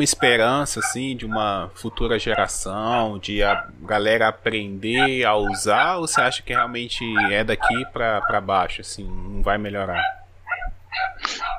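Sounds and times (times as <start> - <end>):
speech: 0.0 - 10.2
faint low hum: 0.0 - 11.5
dog barking in sharp high-pitched yaps: 3.4 - 3.7, 5.0 - 8.4, 9.9 - 11.5.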